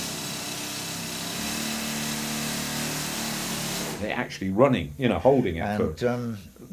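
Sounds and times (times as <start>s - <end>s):
pneumatic air-leg rock drill running: 0.0s - 4.0s
speech: 4.0s - 6.7s.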